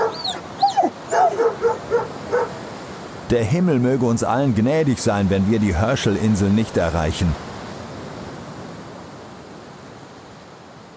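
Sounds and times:
several dogs yapping and whining: 0:00.0 - 0:02.6
speech: 0:03.3 - 0:07.5.

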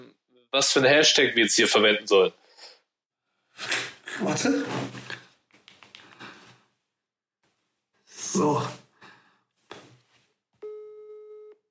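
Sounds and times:
speech: 0:00.5 - 0:02.4, 0:03.6 - 0:05.0, 0:08.3 - 0:08.8
steady electronic telephone ringing tone of an incoming call: 0:10.6 - 0:11.6.

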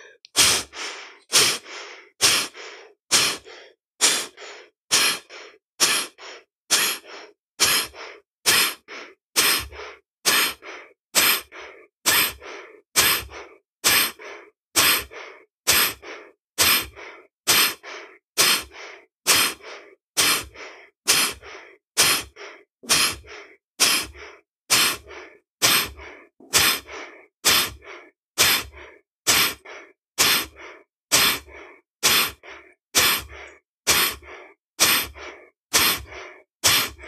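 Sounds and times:
forceful pranayama breathing exercise, deep exhaling and inhaling: 0:00.0 - 0:37.0.

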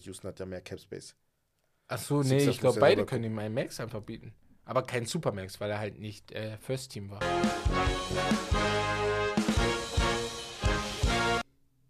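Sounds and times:
speech: 0:00.0 - 0:01.3, 0:01.9 - 0:09.1
loud rhythmic music from a video on a laptop: 0:07.2 - 0:11.5.

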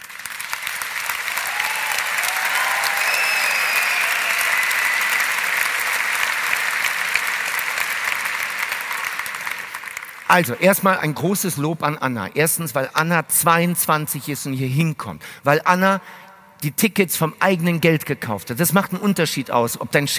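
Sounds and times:
audience applause: 0:00.0 - 0:10.3
faint whistles or cheers: 0:01.4 - 0:05.5
speech: 0:10.3 - 0:20.1.

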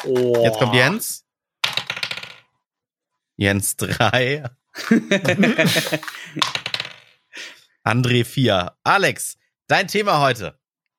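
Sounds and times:
speech: 0:00.0 - 0:01.2, 0:03.4 - 0:06.5, 0:07.9 - 0:10.6
laughter: 0:03.8 - 0:06.4
twenty-sided die rolling across a hard tabletop: 0:06.4 - 0:07.1.

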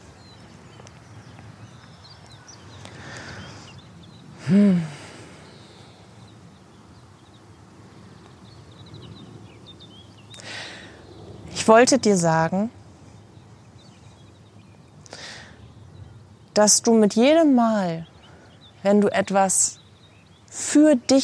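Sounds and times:
low outdoor hum of wind: 0:00.0 - 0:20.6
faint bird chirps outdoors: 0:00.0 - 0:21.2
person murmuring: 0:04.4 - 0:05.1
speech: 0:04.5 - 0:04.9, 0:11.7 - 0:12.8, 0:16.6 - 0:18.1, 0:18.8 - 0:19.8, 0:20.5 - 0:21.2.

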